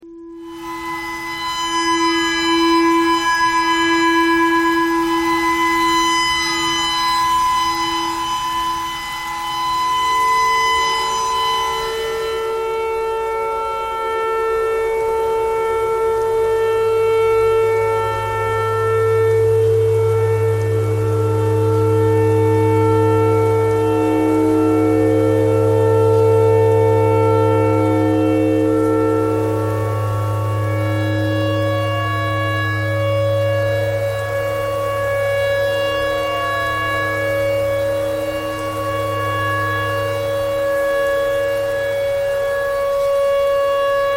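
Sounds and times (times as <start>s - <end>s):
clarinet: 0.0s - 44.1s
tornado siren: 0.0s - 44.1s.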